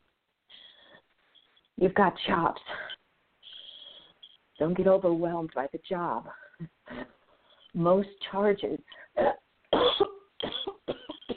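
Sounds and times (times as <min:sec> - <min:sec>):
speech: 0:01.8 - 0:02.8, 0:04.6 - 0:07.1, 0:07.8 - 0:09.4
person with a bullet wound in the lung coughing wetly: 0:09.3 - 0:11.3.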